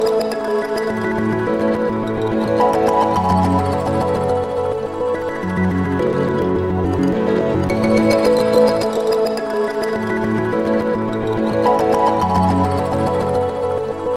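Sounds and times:
xylophone: 0.0 - 13.7
piano: 0.0 - 14.1.

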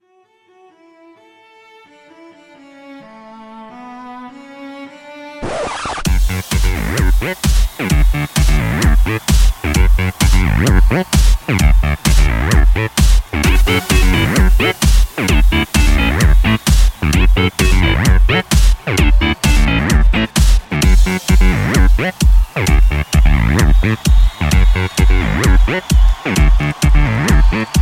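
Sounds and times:
techno alarm: 6.0 - 27.7.

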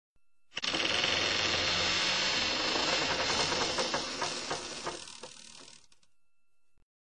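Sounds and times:
door creaking: 0.6 - 6.0.

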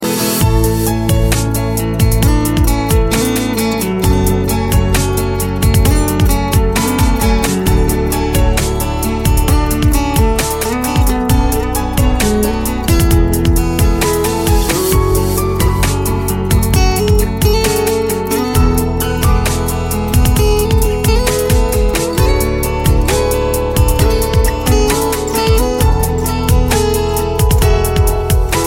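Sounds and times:
guitar ringtone: 0.0 - 28.6
piano ringtone: 0.0 - 28.6.

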